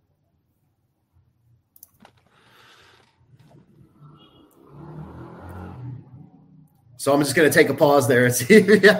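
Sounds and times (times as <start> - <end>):
truck driving by outside with engine rumble and road noise: 3.2 - 8.1
speech: 7.0 - 8.9
laughter: 8.2 - 8.9.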